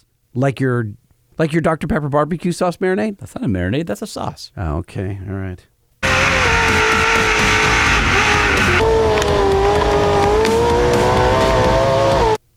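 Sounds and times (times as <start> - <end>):
speech: 0.4 - 5.7
aftermarket car exhaust revving: 6.0 - 12.4.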